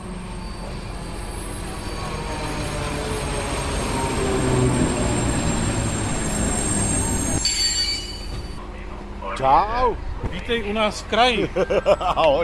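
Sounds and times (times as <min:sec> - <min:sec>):
České dráhy passenger train wheels squealing on arrival at station: 0:00.0 - 0:08.6
speech: 0:09.4 - 0:12.4
laughter: 0:11.2 - 0:12.4.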